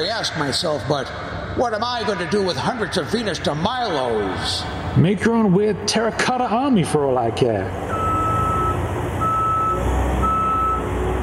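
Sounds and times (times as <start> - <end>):
speech: 0.0 - 8.0
truck reversing alarm beeps: 7.9 - 11.0.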